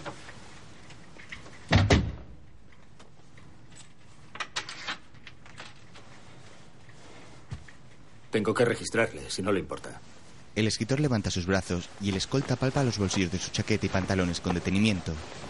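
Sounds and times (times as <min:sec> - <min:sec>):
door shutting with a thud: 0:01.7 - 0:02.4
speech: 0:08.4 - 0:15.4.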